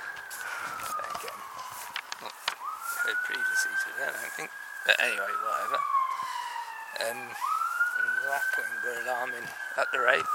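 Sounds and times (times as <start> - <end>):
faint police sirens wailing in the distance: 0.0 - 10.3
soft outdoor background: 0.0 - 10.3
speech: 3.1 - 6.0, 7.0 - 10.3.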